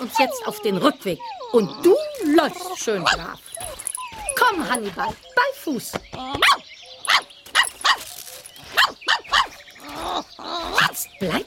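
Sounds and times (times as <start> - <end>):
speech: 0.0 - 3.8, 4.4 - 6.6, 10.0 - 11.4
dachshund barking on a walk: 6.4 - 8.1, 8.8 - 9.6.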